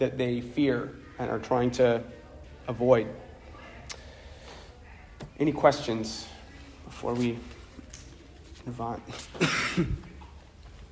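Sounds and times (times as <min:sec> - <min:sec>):
speech: 0:00.0 - 0:03.2, 0:05.4 - 0:07.6, 0:08.6 - 0:10.1
chest cough from someone getting over the flu: 0:09.2 - 0:10.2.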